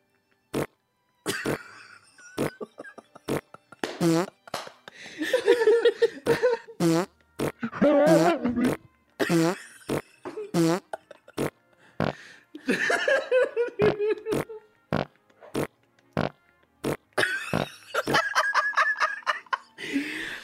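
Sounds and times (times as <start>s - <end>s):
loud farts while bolting out a door: 0.5s - 0.7s, 3.3s - 4.4s, 6.8s - 12.2s, 14.3s - 17.6s
laughter: 1.3s - 6.8s, 7.6s - 11.5s, 12.6s - 14.7s, 17.2s - 20.4s.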